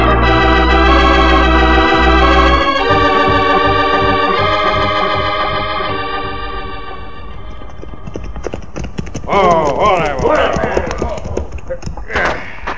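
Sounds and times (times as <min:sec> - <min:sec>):
sustained tone: 0:00.0 - 0:08.8
horse hooves clip-clopping: 0:07.3 - 0:12.1
voices: 0:09.3 - 0:12.7.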